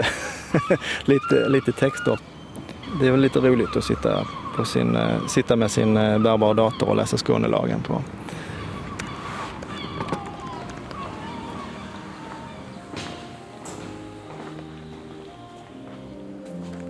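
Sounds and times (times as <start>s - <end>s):
speech: 0.0s - 2.3s, 2.9s - 8.4s
busy steady outdoor ambient noise: 0.0s - 16.8s
gulls screeching outdoors outside a church: 0.0s - 16.8s
footsteps: 8.8s - 16.8s.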